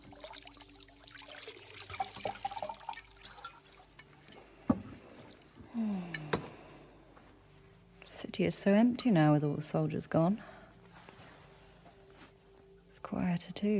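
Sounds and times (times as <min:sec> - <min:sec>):
unguent oil poured into a hot bath of water: 0:00.0 - 0:05.7
scattered drips in bath water: 0:00.0 - 0:06.4
speech: 0:08.4 - 0:10.5, 0:13.4 - 0:13.7.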